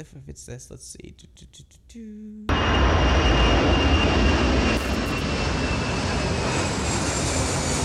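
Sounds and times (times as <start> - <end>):
speech: 0.0 - 6.6
airplane engine roar recorded inside a hotel room near an airport: 2.5 - 7.8.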